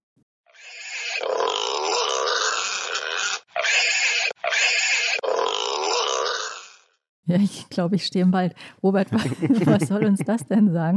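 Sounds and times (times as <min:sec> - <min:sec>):
wild boar grunting: 0:00.7 - 0:06.7
speech: 0:07.3 - 0:10.9
laughter: 0:09.1 - 0:10.6.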